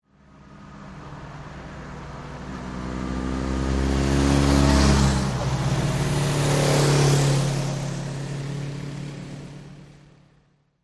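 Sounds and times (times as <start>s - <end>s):
car passing at medium speed: 0.3s - 9.8s
motorcycles passing at medium speed: 2.5s - 10.1s.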